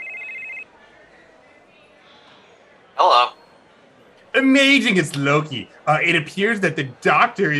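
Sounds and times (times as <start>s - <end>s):
phone ringing tone heard while placing a call: 0.0s - 0.7s
speech: 4.4s - 7.5s.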